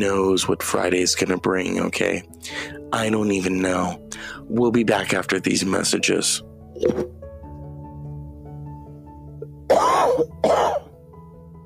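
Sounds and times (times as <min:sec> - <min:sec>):
speech: 0:00.0 - 0:07.2
loud harsh coughs: 0:06.8 - 0:07.1, 0:09.7 - 0:11.0
dry throat clearing: 0:09.7 - 0:10.9.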